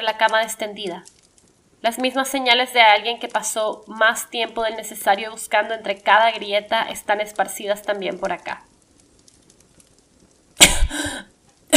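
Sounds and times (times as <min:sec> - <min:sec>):
speech: 0:00.0 - 0:01.2, 0:01.8 - 0:08.7
harsh raspy cough from smoke inhalation inside a burning room: 0:10.6 - 0:11.2.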